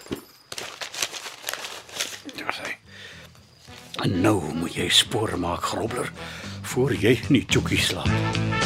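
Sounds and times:
dry paper crumpled and stuffed into pocket: 0:00.0 - 0:02.8
speech: 0:04.0 - 0:08.5.

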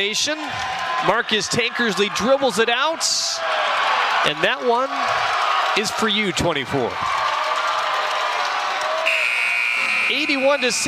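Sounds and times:
speech: 0:00.0 - 0:07.2, 0:10.1 - 0:10.8
crowd cheering: 0:00.0 - 0:10.8
high school gym buzzer: 0:09.1 - 0:10.8.

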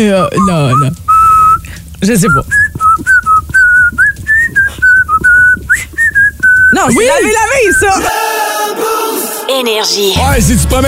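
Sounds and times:
speech: 0:00.0 - 0:01.0, 0:02.0 - 0:03.1, 0:06.7 - 0:10.8
person whistling a lively melody: 0:00.0 - 0:08.0.

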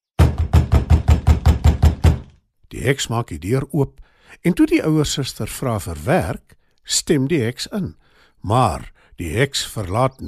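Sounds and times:
knocking on a wooden door: 0:00.2 - 0:02.3
speech: 0:02.8 - 0:10.2.

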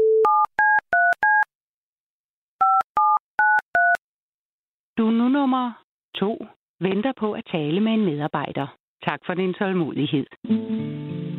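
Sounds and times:
touch-tone keypad beeps: 0:00.2 - 0:01.5, 0:02.6 - 0:04.0
speech: 0:05.4 - 0:11.1.

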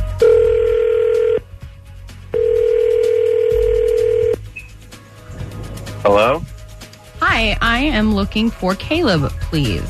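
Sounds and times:
telephone ringback tone of a call being placed: 0:00.2 - 0:01.5, 0:02.3 - 0:04.4
speech: 0:07.8 - 0:09.8.

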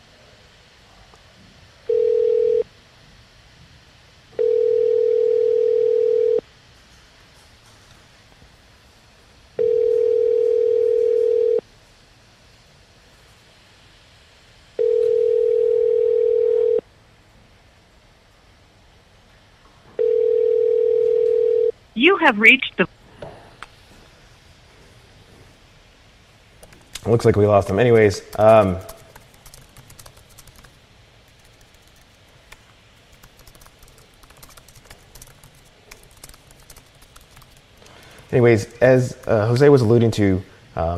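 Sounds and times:
telephone tone while a call is being placed: 0:01.9 - 0:02.7, 0:04.4 - 0:06.4, 0:09.6 - 0:11.6, 0:14.8 - 0:16.8, 0:20.0 - 0:21.7
speech: 0:22.2 - 0:22.9, 0:27.1 - 0:28.9, 0:38.4 - 0:40.9.

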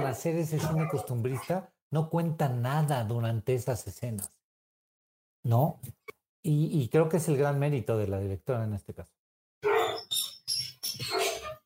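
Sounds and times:
dogs barking: 0:00.0 - 0:01.6, 0:09.6 - 0:10.1, 0:11.0 - 0:11.4
speech: 0:00.1 - 0:04.4, 0:05.4 - 0:09.7.

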